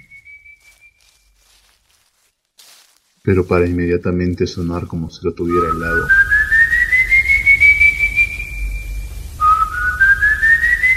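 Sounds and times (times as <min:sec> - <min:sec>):
lone eerie human whistle on a high note: 0:00.0 - 0:01.4, 0:05.5 - 0:10.9
soft shuffling: 0:00.0 - 0:08.4
speech: 0:03.2 - 0:06.4
brief hiss: 0:06.9 - 0:10.9.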